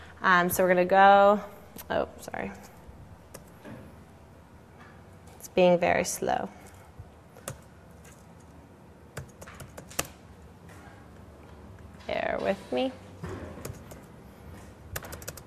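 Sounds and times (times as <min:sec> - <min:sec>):
speech: 0:00.2 - 0:02.7, 0:05.6 - 0:06.6, 0:12.4 - 0:13.0
typing on a computer keyboard: 0:09.2 - 0:10.2, 0:13.6 - 0:14.1, 0:14.9 - 0:15.4.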